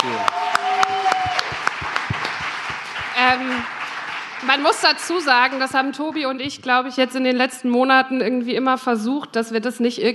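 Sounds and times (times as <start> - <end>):
short tonal cheers or whoops: 0.0 - 2.0
live audience applause with sharp hand claps at an evening event at Schloss Bruch: 0.0 - 6.2
speech: 4.5 - 10.1.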